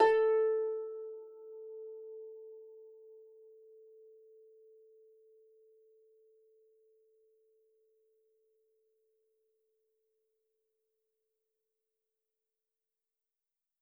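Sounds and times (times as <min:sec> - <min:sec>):
harp note A3: 0:00.0 - 0:01.2.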